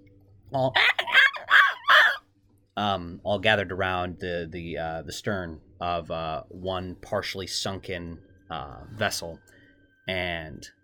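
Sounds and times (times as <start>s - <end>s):
speech: 0.5s - 1.1s, 2.8s - 10.8s
seagulls calling around a partially sunken boat: 0.6s - 2.2s.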